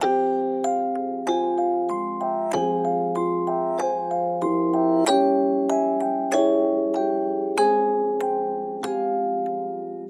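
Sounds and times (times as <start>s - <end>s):
95 BPM melody loop in C major: 0.0s - 10.0s.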